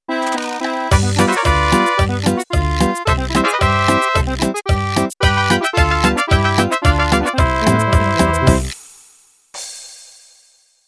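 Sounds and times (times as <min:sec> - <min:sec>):
mariachi music intro: 0:00.1 - 0:08.8.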